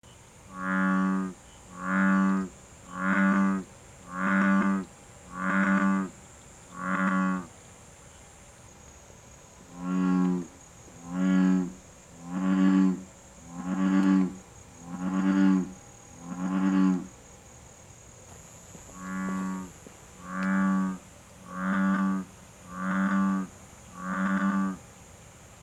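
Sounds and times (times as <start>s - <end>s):
frog: 0.5s - 7.6s, 9.6s - 17.2s, 18.8s - 24.9s.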